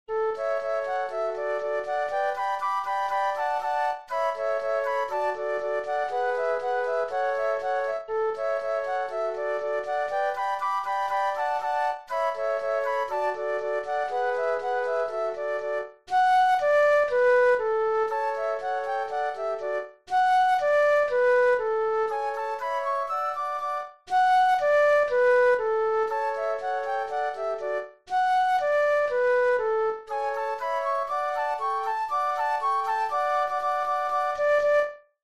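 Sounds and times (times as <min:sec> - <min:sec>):
flute trio playing classical music: 0:00.3 - 0:35.0.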